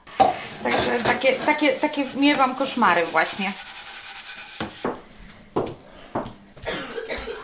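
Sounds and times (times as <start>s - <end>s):
faint rustling rubbing noise: 0.1s - 4.9s
speech: 1.0s - 3.7s
child coughing: 6.6s - 7.4s.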